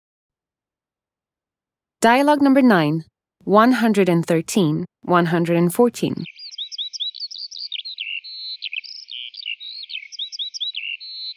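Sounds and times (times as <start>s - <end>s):
speech: 2.0s - 6.4s
bird chirping from a nest: 6.1s - 11.3s.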